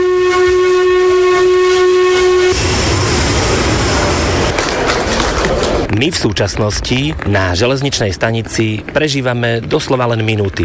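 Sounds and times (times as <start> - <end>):
steam train whistle blowing: 0.0 - 2.7
steam train rumbling: 0.0 - 10.6
hissing steam from a steam train: 2.5 - 4.6
speech: 6.0 - 10.6.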